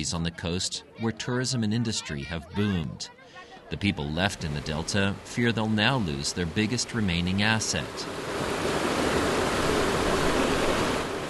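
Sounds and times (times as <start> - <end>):
speech: 0.0 - 8.5
river water flowing into flooded rice fields: 3.6 - 11.2.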